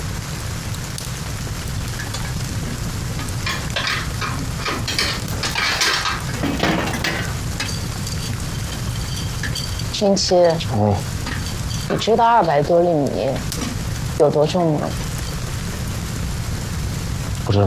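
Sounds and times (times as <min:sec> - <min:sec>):
stove fire crackling and hissing: 0:00.0 - 0:17.6
stove being stoked, scraping and clattering: 0:01.8 - 0:14.0
speech: 0:10.0 - 0:11.1, 0:11.9 - 0:13.5, 0:14.2 - 0:15.1.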